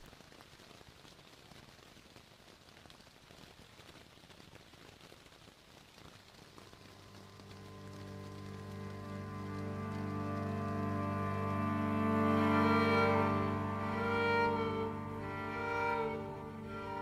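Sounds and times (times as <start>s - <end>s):
steady rain pattering on hats: 0.0s - 17.0s
low sustained tone: 7.0s - 17.0s.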